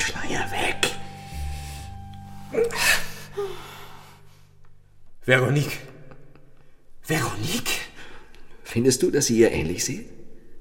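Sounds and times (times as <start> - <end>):
low steady hum: 0.0 - 7.2
woman breathing heavily: 1.2 - 4.6
speech: 5.3 - 5.9, 7.1 - 7.8, 8.7 - 10.2.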